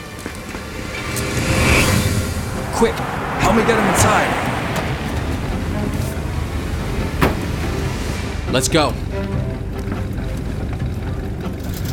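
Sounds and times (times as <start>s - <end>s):
police patrol car engine rumbling in fog: 0.1s - 11.9s
person speaking urgently: 2.6s - 4.8s, 8.5s - 9.0s
speech: 2.8s - 4.5s, 8.5s - 9.4s
sharp knocks and thumps: 7.2s - 7.7s.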